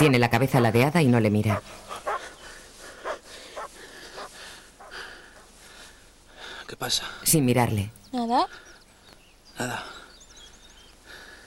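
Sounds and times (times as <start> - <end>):
speech: 0.0 - 1.8, 6.7 - 8.7, 9.6 - 10.0
faint noise: 0.0 - 11.4
dog barking: 1.6 - 2.4, 3.0 - 5.0.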